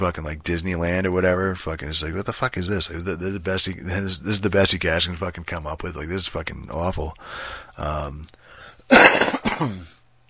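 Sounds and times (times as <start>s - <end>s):
speech: 0.0s - 10.0s
harsh gravelly coughs: 8.9s - 10.0s
voiced throat-clearing rumble: 8.9s - 10.0s.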